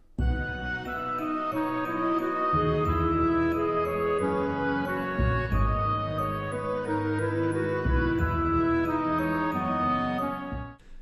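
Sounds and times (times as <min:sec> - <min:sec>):
harp: 0:00.1 - 0:10.8
clarinet counter melody: 0:00.2 - 0:10.8
pizzicato double basses: 0:02.4 - 0:10.8.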